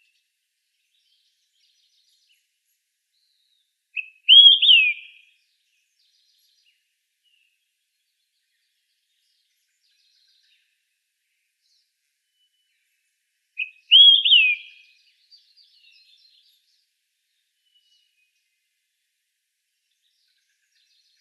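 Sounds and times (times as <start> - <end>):
Olive-sided flycatcher singing: 4.0 - 5.2, 13.6 - 14.8.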